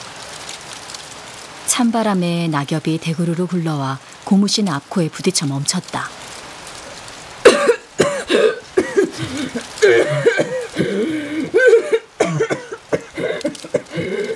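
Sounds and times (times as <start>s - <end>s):
speech: 1.8s - 6.2s, 9.8s - 10.4s
person coughing in a prolonged coughing fit: 7.4s - 14.3s
throaty wheezing catches: 7.4s - 14.3s.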